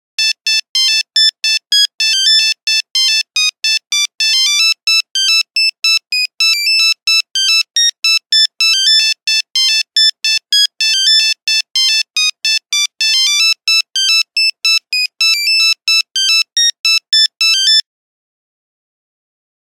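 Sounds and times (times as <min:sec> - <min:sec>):
Nokia 1100 phone buzzer: 0:00.2 - 0:17.8.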